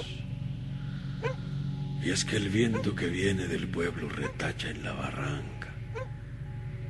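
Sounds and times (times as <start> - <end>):
low rumbling drone: 0.0 - 6.8
dog barking: 1.2 - 1.4
speech: 2.0 - 6.1.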